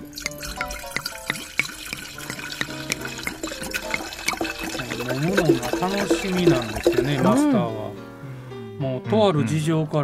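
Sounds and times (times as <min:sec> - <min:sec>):
sake glugging from a bottle into a cup for a memorial toast: 0:00.0 - 0:07.4
speech: 0:05.5 - 0:07.8, 0:09.0 - 0:10.0.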